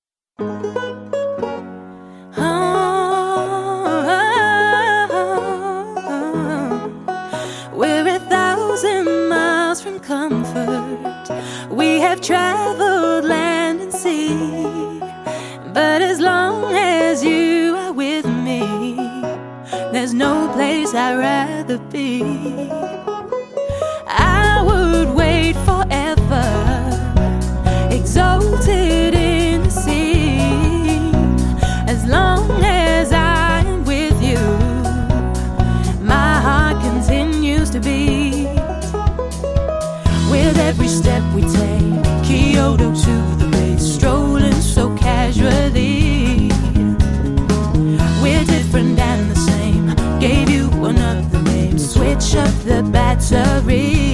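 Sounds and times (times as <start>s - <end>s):
vintage folk band playing: 2.5s - 54.1s.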